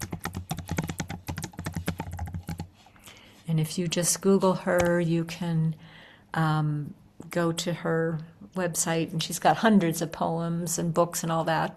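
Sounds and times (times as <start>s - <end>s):
typing on a computer keyboard: 0.0s - 2.7s
speech: 3.5s - 11.7s.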